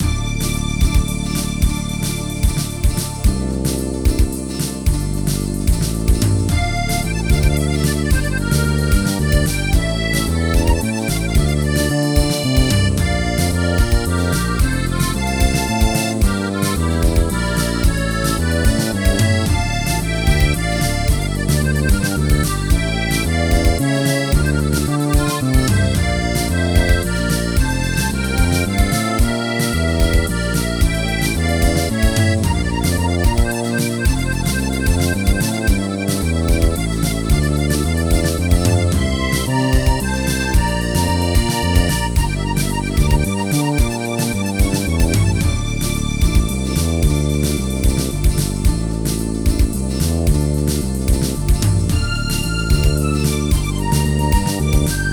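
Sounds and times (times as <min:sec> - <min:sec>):
car driving in France: 0:00.0 - 0:55.1.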